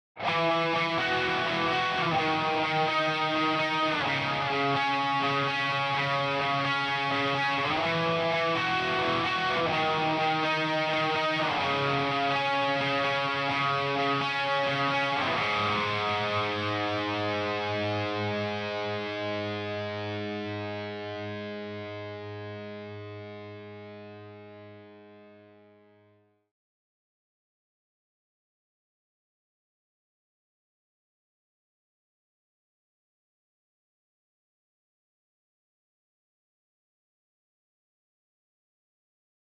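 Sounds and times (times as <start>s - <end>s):
bass guitar: 0.2s - 25.3s.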